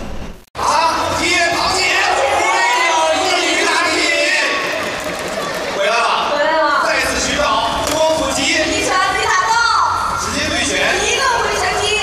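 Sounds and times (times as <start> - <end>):
packed gymnasium crowd cheering and shouting at a humanoid robot fight: 0.6 - 12.0.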